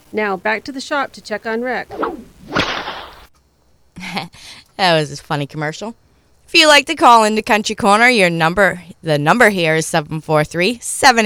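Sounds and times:
speech: 0:00.1 - 0:02.2, 0:04.1 - 0:11.2
whip crack: 0:01.9 - 0:03.3.

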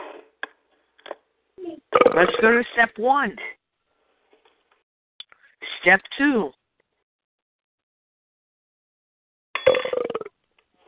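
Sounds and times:
drawn-out rattling burp: 0:01.9 - 0:02.6, 0:09.6 - 0:10.4
speech: 0:02.2 - 0:03.5, 0:05.8 - 0:06.6.

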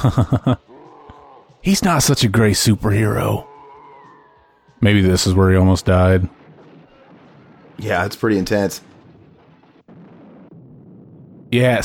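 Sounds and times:
laughter: 0:00.0 - 0:00.7
speech: 0:00.0 - 0:00.7, 0:01.6 - 0:03.5, 0:04.8 - 0:06.4, 0:07.8 - 0:08.9, 0:11.5 - 0:11.8
loud sustained movie explosion rumble with low and broadband roar: 0:05.8 - 0:11.8.

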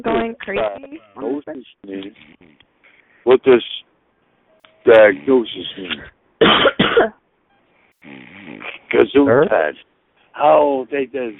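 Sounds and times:
speech: 0:00.0 - 0:02.6, 0:03.2 - 0:03.9, 0:04.8 - 0:07.2, 0:08.0 - 0:11.3
harsh forceful coughs: 0:05.0 - 0:07.2.

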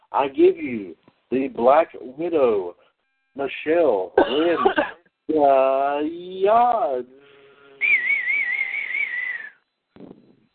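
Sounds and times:
speech: 0:00.1 - 0:02.8, 0:03.4 - 0:07.2
person whistling a sustained high note: 0:07.8 - 0:09.6.

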